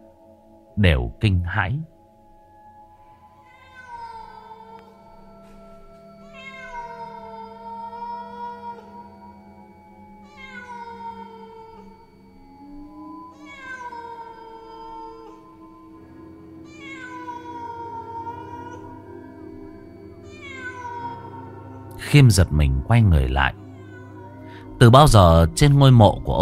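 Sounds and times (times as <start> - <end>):
speech: 0.8 - 1.9, 22.1 - 23.6, 24.8 - 26.4
black cat meowing in a graveyard at night: 3.4 - 5.0, 6.2 - 9.0, 10.2 - 12.0, 13.3 - 15.4, 16.6 - 19.0, 20.2 - 21.6, 23.5 - 24.5.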